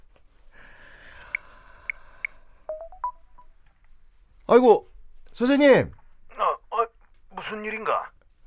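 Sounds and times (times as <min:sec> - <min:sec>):
telephone keypad tones of a number being dialed: 0:01.3 - 0:03.2
speech: 0:04.5 - 0:06.0, 0:07.5 - 0:08.2.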